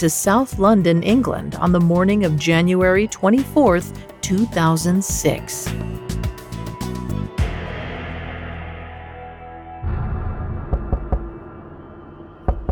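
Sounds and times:
speech: 0.0s - 6.1s
low sustained droning hum: 9.8s - 12.7s
scattered thuds: 10.6s - 11.5s, 12.4s - 12.7s
sharp insistent knocking on a door: 10.7s - 11.3s, 12.5s - 12.7s.

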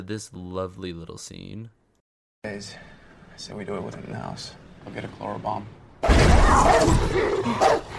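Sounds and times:
speech: 0.0s - 1.8s, 2.4s - 7.9s
guard dog barking and snarling aggressively: 6.7s - 7.9s.

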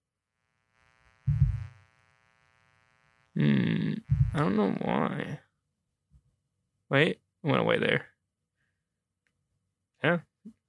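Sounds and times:
steady droning electrical buzz: 0.2s - 5.1s
loud harsh buzzing burst: 0.5s - 4.7s
dull low thump: 1.3s - 1.7s, 4.1s - 4.4s
speech: 4.3s - 5.4s, 6.9s - 8.1s, 10.0s - 10.6s.

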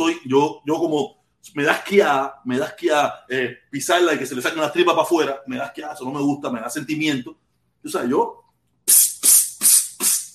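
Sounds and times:
speech: 0.0s - 9.8s
aerosol insect spray can hissing against cockroaches in a house in Miami: 8.9s - 10.3s.

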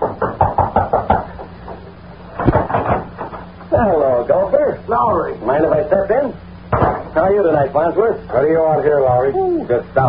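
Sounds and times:
firm knocking on a wooden door: 0.0s - 1.5s
speech: 3.8s - 6.4s, 7.2s - 10.0s.

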